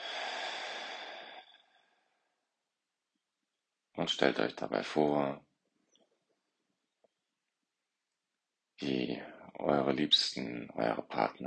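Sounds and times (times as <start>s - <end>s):
slow exhale during a guided breathing exercise: 0.0s - 2.2s
speech: 4.0s - 5.5s, 8.8s - 11.4s.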